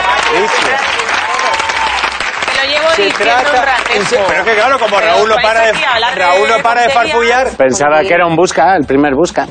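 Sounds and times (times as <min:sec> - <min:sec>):
audience applause: 0:00.0 - 0:06.0
speech: 0:03.0 - 0:09.4.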